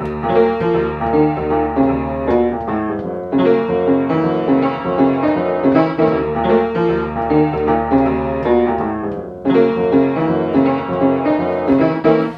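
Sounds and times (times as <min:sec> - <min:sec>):
piano rolling: 0:00.0 - 0:12.3.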